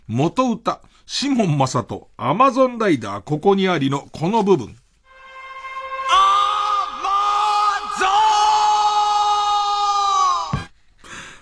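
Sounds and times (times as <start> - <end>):
speech: 0.1 - 4.8
male singer shouting in a theme song: 6.0 - 10.7.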